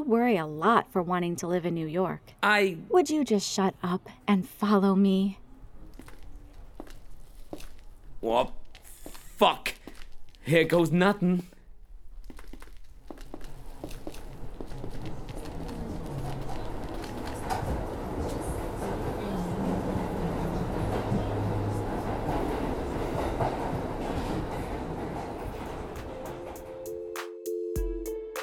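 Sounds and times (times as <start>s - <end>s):
speech: 0.1s - 5.4s, 8.2s - 8.6s, 9.4s - 9.8s, 10.4s - 11.5s
subway train rumbling with rattling clattering wheels: 5.4s - 12.2s, 12.9s - 27.0s.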